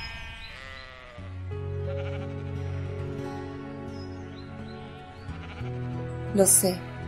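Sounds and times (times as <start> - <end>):
sheep and lambs bleating: 0.0 - 3.0, 3.6 - 6.0
speech: 6.3 - 6.9.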